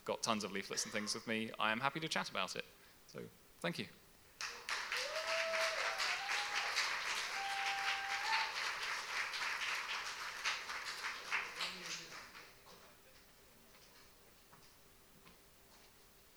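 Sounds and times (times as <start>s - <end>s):
speech: 0.1s - 4.0s
audience applause: 4.4s - 12.6s.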